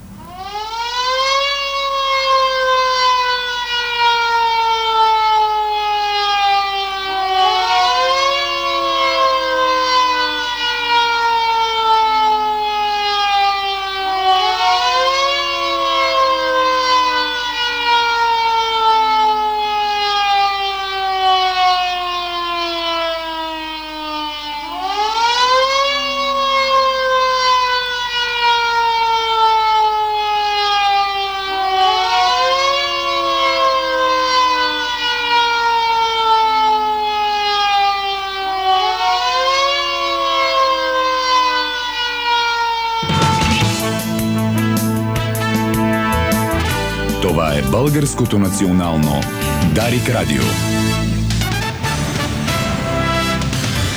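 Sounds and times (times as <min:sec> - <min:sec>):
civil defense sirens wailing: 0:00.0 - 0:53.9
speech: 0:48.0 - 0:51.1.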